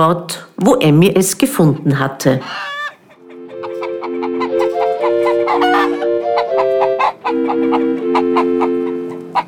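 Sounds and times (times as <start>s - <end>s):
speech: 0.0s - 2.8s, 7.3s - 9.4s
hen clucking plaintively: 2.5s - 9.4s
chicks peeping: 2.7s - 9.4s.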